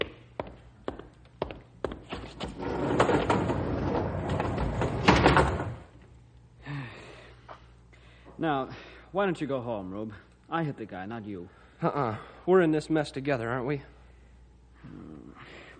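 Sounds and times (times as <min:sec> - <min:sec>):
quick footsteps: 0:00.0 - 0:03.4
heavy doors rolled and pushed shut with grinding rumble and thud: 0:02.5 - 0:05.9
speech: 0:08.4 - 0:13.9.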